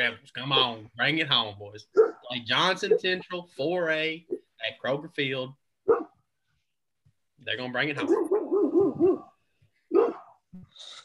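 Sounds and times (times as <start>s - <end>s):
speech: 0.0s - 5.6s, 7.4s - 8.4s
dog barking: 1.9s - 2.3s, 5.8s - 6.2s, 8.0s - 10.4s.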